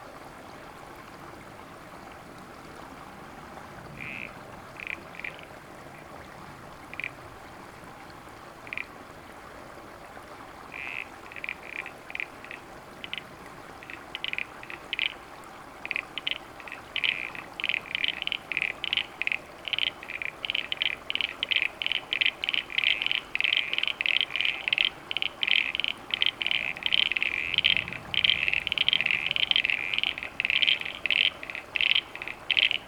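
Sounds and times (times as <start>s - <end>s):
Crinia signifera and or C. parasignifera frogs calling in Canberra: 4.0s - 6.1s, 6.8s - 7.2s, 8.6s - 8.9s, 10.7s - 15.2s, 15.8s - 32.8s.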